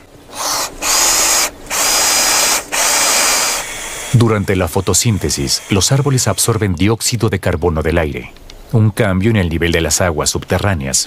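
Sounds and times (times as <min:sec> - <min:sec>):
power drill drilling a plate: 0:00.3 - 0:06.6
speech: 0:04.2 - 0:11.0.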